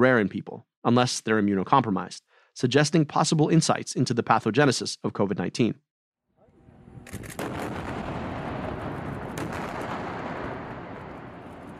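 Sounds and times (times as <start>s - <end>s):
speech: 0.0s - 5.8s, 7.1s - 7.5s
sharp loud blasts: 6.9s - 11.7s
explosions and artillery fire from a nightly bombardment of Gaza: 7.2s - 11.7s.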